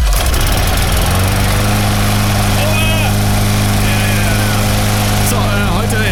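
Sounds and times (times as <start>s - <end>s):
lawn mower engine running: 0.0s - 6.1s
laughter: 0.4s - 6.1s.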